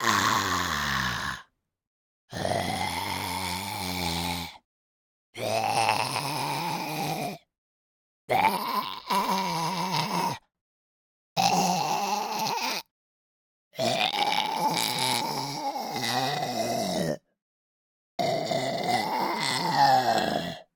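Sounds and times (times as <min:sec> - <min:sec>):
zombie vocalizations: 0:00.0 - 0:01.5, 0:02.3 - 0:04.6, 0:05.4 - 0:07.5, 0:08.3 - 0:10.4, 0:11.4 - 0:12.9, 0:13.8 - 0:17.3, 0:18.2 - 0:20.7.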